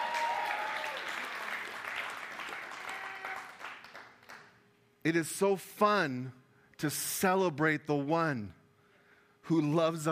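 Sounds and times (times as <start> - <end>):
crowd cheering: 0.0 - 4.1
audience applauding: 0.0 - 4.5
speech: 5.0 - 8.6, 9.4 - 10.1.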